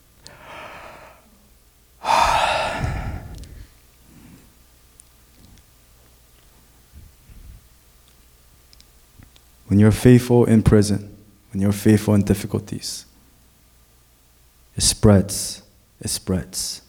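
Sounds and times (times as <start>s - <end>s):
faint breaths: 0.2s - 1.3s, 2.0s - 4.6s
person yawning: 0.3s - 1.2s, 2.0s - 3.6s
speech: 9.7s - 13.1s, 14.8s - 16.8s.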